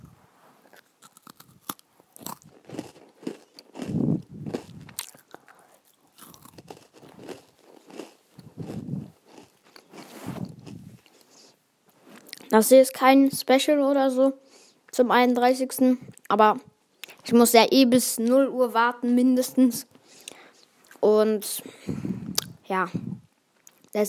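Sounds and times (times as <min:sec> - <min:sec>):
crunchy bites into food: 0:00.7 - 0:11.3
chewing with crackling mouth sounds: 0:00.7 - 0:11.5, 0:22.2 - 0:22.6
speech: 0:12.6 - 0:14.4, 0:15.0 - 0:16.7, 0:17.3 - 0:19.9, 0:21.1 - 0:22.0, 0:22.7 - 0:23.1.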